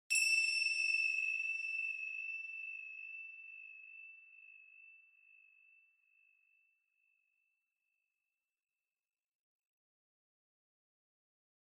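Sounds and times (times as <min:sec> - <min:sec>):
finger cymbals with long reverb: 0:00.1 - 0:04.8.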